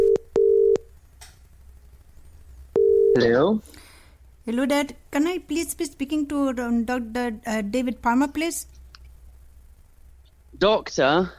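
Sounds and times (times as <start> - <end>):
telephone ringing tone over the line: 0.0 - 0.8, 2.8 - 3.3
speech: 3.2 - 3.8, 4.5 - 8.8, 10.6 - 11.3.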